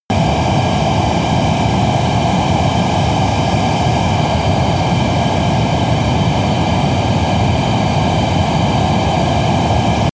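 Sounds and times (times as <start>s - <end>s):
military jet fighter turbine steady noise: 0.1s - 10.1s.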